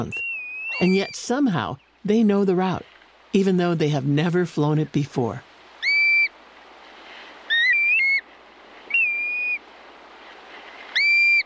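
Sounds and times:
black-bellied plover whistled call: 0:00.0 - 0:01.9, 0:05.8 - 0:06.3, 0:07.5 - 0:08.2, 0:08.9 - 0:09.6, 0:10.9 - 0:11.4
speech: 0:00.0 - 0:05.5
hiss of wind or surf: 0:05.3 - 0:11.4.

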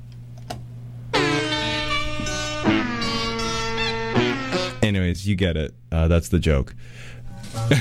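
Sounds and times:
steady low hum: 0:00.8 - 0:04.9
bicycle horns and air horns playing music: 0:01.1 - 0:04.8
speech: 0:04.9 - 0:07.7.

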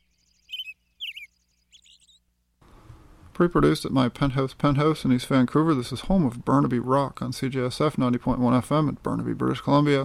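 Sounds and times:
songbird singing bright high chirps and trills: 0:00.0 - 0:02.3
faint low hum: 0:00.0 - 0:10.0
speech: 0:03.4 - 0:10.0.

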